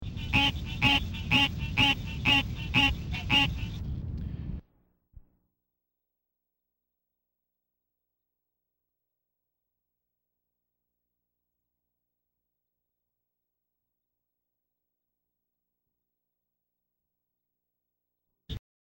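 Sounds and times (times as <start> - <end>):
green treefrog calling: 0.2 - 3.7.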